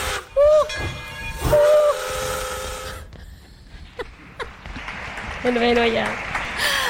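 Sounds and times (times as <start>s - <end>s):
train whistle blowing: 0.0s - 3.1s
hissing rumble of departing train: 1.5s - 3.1s
speech: 5.4s - 6.7s.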